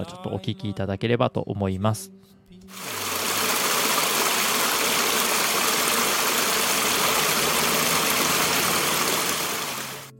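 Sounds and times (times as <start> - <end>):
speech: 0.0 - 2.9
babbling river stream in a park: 2.7 - 10.1.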